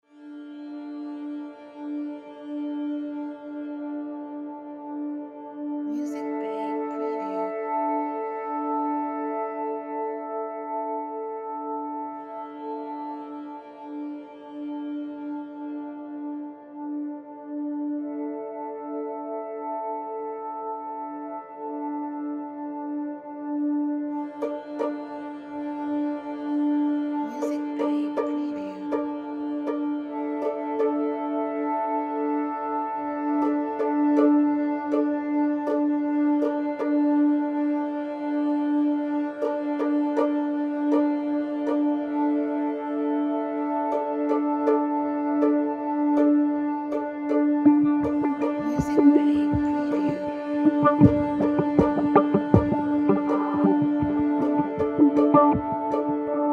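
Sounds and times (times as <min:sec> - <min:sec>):
documentary tension ambience music: 0:01.2 - 0:56.5.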